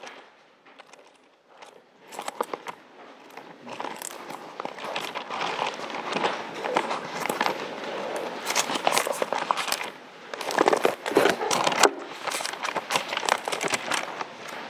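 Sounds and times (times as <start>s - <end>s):
Bible pages being turned: 0.0s - 14.6s.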